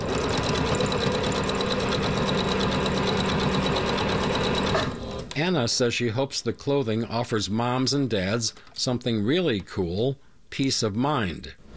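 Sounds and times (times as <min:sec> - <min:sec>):
sewing machine stitching adaptive clothing for children in a backyard shed: 0:00.0 - 0:05.4
speech: 0:05.4 - 0:11.7.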